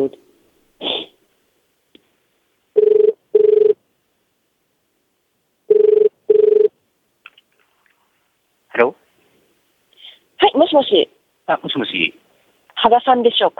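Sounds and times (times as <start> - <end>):
speech: 0.0 - 0.2, 10.8 - 12.2, 12.8 - 13.5
telephone ringback tone after a number is dialed: 2.8 - 3.8, 5.7 - 6.7.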